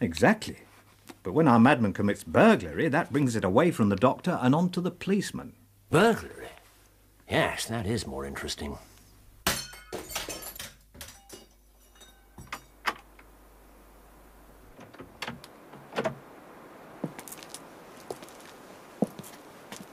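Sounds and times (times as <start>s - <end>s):
speech: 0.0s - 0.6s, 1.2s - 6.6s, 7.3s - 8.9s
plaster bust smashing against a garden wall: 9.4s - 11.6s
falling fragments clattering: 9.4s - 12.8s.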